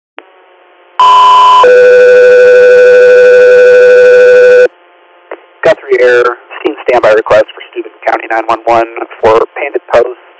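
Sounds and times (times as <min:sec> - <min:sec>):
two-tone dispatch radio paging alert: 0:01.0 - 0:04.7
speech: 0:07.1 - 0:10.3.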